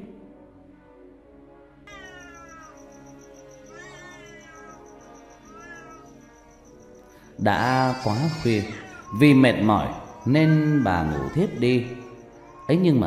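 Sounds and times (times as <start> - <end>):
cat meowing at midnight: 1.9 - 6.8, 7.5 - 13.0
speech: 7.4 - 12.0, 12.7 - 13.0.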